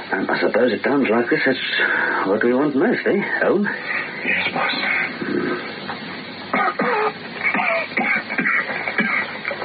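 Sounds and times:
speech: 0:00.2 - 0:05.1
person coughing: 0:06.5 - 0:09.6.

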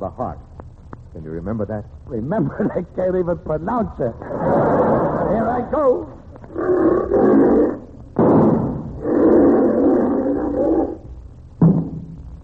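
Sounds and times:
speech: 0:00.0 - 0:00.6, 0:01.2 - 0:04.7, 0:05.6 - 0:07.8
lion roaring: 0:04.2 - 0:05.8, 0:06.4 - 0:11.2.

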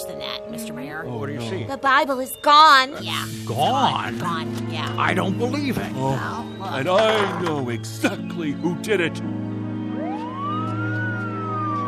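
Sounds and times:
speech: 0:00.6 - 0:09.2
police car siren wailing: 0:09.6 - 0:11.8.

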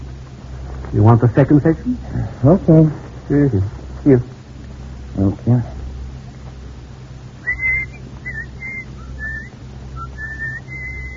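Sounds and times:
steady low hum: 0:00.0 - 0:11.1
speech: 0:00.9 - 0:04.3, 0:05.2 - 0:05.8
person whistling a short tune: 0:07.5 - 0:11.1.

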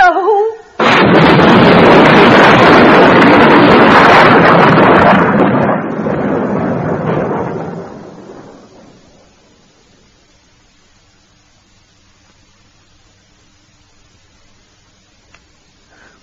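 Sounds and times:
massive thunderclap during an electric storm: 0:00.8 - 0:09.7.

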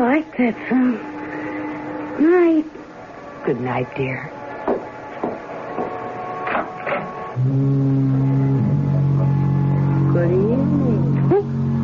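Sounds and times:
droning hum: 0:00.0 - 0:11.8
speech: 0:00.2 - 0:01.2, 0:02.2 - 0:02.8, 0:03.4 - 0:04.4, 0:07.4 - 0:08.6, 0:10.2 - 0:11.8
foghorn blowing in the fog: 0:07.1 - 0:11.8.

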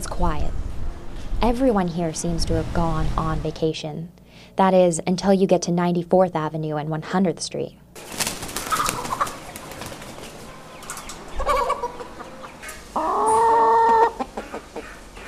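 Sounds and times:
speech: 0:00.2 - 0:00.6, 0:01.4 - 0:08.2
poultry squawking and clucking in a crowded pen at a live bird market: 0:08.0 - 0:15.2.

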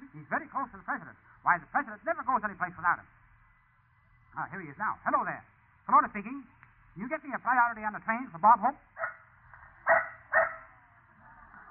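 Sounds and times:
speech: 0:00.3 - 0:03.2, 0:04.4 - 0:09.2
dog barking over the telephone: 0:09.0 - 0:09.2, 0:09.8 - 0:10.8.

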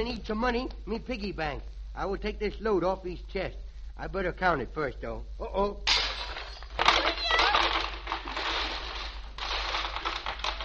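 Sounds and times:
speech: 0:00.0 - 0:06.0
clattering and crinkling debris of a broken piggy bank: 0:05.9 - 0:10.6
piggy bank breaking: 0:05.9 - 0:10.6.

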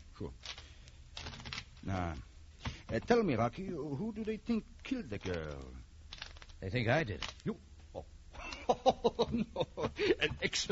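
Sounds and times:
speech: 0:00.2 - 0:00.5, 0:01.8 - 0:02.3, 0:02.9 - 0:05.9, 0:06.6 - 0:08.1, 0:08.7 - 0:10.6
playing cards being shuffled for a card game: 0:00.4 - 0:03.2, 0:04.1 - 0:07.5
laughter: 0:08.4 - 0:10.6.

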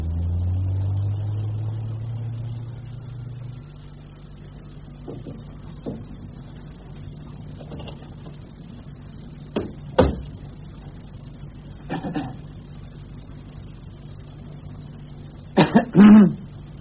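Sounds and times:
low steady hum: 0:00.0 - 0:16.8
person coughing: 0:11.9 - 0:12.4, 0:15.6 - 0:16.5
throat clearing: 0:11.9 - 0:12.4, 0:15.6 - 0:16.5.

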